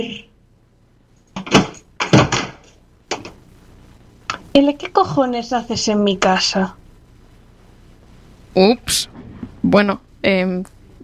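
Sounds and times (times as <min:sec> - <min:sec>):
speech: 0:00.0 - 0:00.3, 0:04.6 - 0:06.8, 0:08.6 - 0:11.0
firm knocks on a house door: 0:01.4 - 0:03.3.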